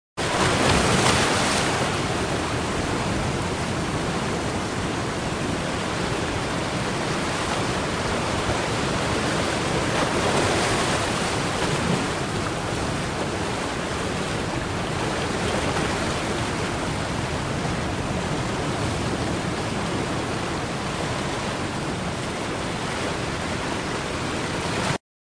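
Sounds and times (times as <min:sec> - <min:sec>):
shore waves: 0:00.2 - 0:25.0.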